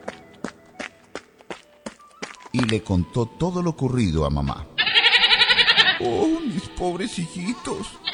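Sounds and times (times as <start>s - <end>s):
footsteps of a child running out of a wardrobe: 0.0s - 2.8s
speech: 2.6s - 4.7s, 6.0s - 8.0s.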